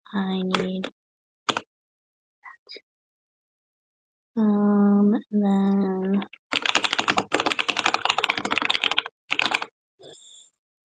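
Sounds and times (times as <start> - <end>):
speech: 0.1 - 1.0, 2.7 - 2.9, 4.4 - 6.6
computer keyboard typing: 0.4 - 0.9, 1.5 - 1.7, 6.0 - 9.7.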